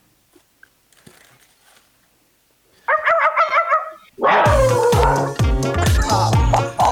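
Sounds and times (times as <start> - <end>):
person imitating a dog barking: 2.9 - 6.8.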